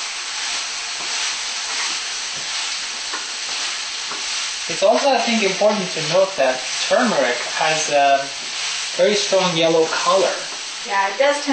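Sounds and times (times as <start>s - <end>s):
tofu sizzling in a hot pan while stirred: 0.0s - 11.5s
speech: 4.7s - 8.4s, 9.0s - 11.5s.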